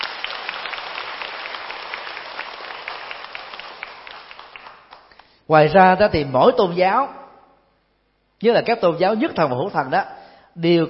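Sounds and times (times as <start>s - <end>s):
audience applause: 0.0s - 5.2s
speech: 5.5s - 7.2s, 8.4s - 10.8s.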